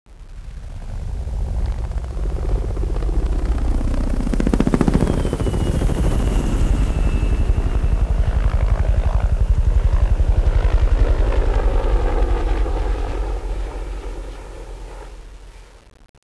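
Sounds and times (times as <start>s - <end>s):
helicopter flyby: 0.2s - 15.7s.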